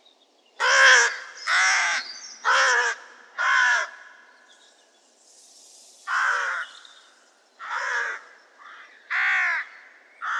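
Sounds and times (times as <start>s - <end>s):
crow cawing: 0.6s - 4.2s, 6.1s - 6.8s, 7.6s - 10.3s.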